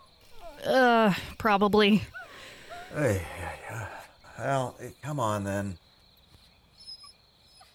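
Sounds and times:
puppy whimpering: 0:00.0 - 0:00.8, 0:06.8 - 0:07.7
speech: 0:00.6 - 0:02.2, 0:02.9 - 0:05.8.

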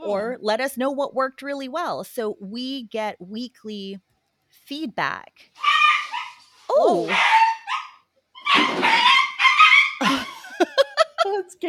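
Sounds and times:
speech: 0:00.1 - 0:05.8, 0:06.7 - 0:07.5, 0:08.5 - 0:09.2, 0:11.3 - 0:11.6
puppy barking while playing with a cat: 0:05.6 - 0:06.4, 0:07.1 - 0:10.0
puppy whining: 0:05.6 - 0:10.3
laughter: 0:10.0 - 0:11.3.

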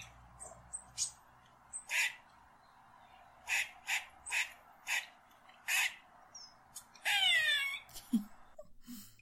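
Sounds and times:
squirrel alarm call: 0:00.8 - 0:02.2, 0:03.4 - 0:07.8.

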